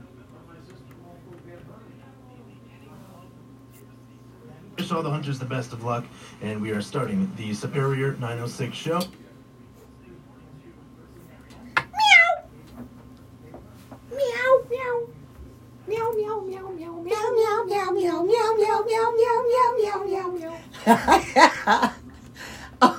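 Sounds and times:
speech: 0:04.9 - 0:09.2
cat meowing: 0:11.8 - 0:12.5, 0:14.1 - 0:15.1, 0:15.9 - 0:20.6
noisy chuckling: 0:20.5 - 0:22.9.

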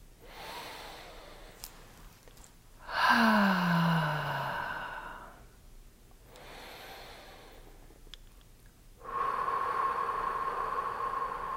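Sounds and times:
deep relaxing breathing through the nose with a gentle voiced sigh: 0:00.2 - 0:01.8, 0:02.8 - 0:05.6, 0:06.3 - 0:07.9, 0:09.0 - 0:11.5.

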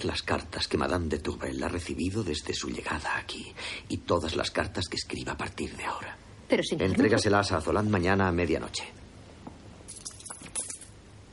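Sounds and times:
speech: 0:00.0 - 0:09.0
coins tossed onto bedsheets: 0:09.8 - 0:11.0.

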